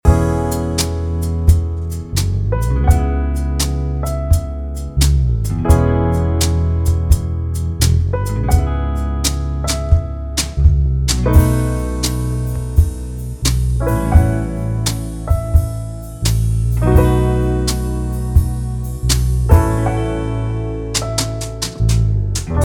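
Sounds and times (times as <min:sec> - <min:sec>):
luxury jazz loop: 0:00.0 - 0:22.6.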